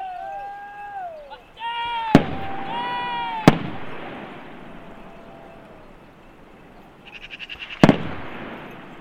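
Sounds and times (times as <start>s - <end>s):
distant hunting rifle gunshots echoing: 2.2s - 5.6s, 7.7s - 8.9s.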